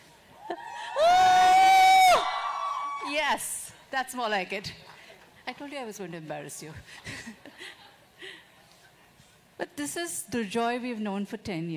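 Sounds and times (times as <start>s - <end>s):
audience of women screaming and cheering: 0.4s - 3.2s
speech: 3.3s - 4.9s, 5.5s - 7.4s, 9.6s - 11.7s.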